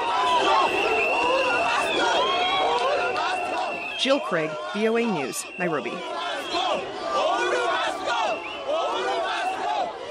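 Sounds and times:
whistles: 0.0 - 4.6, 5.2 - 6.9, 8.0 - 9.0
large street crowd cheering and shouting: 0.0 - 10.1
speech: 4.0 - 6.2.

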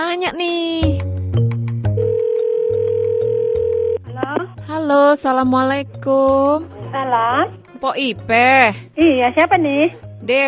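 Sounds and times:
faint musical bed: 0.0 - 10.4
speech: 0.1 - 0.8, 4.9 - 10.4
electronic telephone ringback tone: 2.0 - 4.0.

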